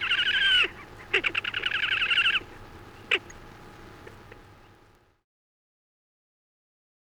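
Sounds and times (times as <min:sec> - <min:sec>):
Slavonian grebe trilling song: 0:00.0 - 0:04.7.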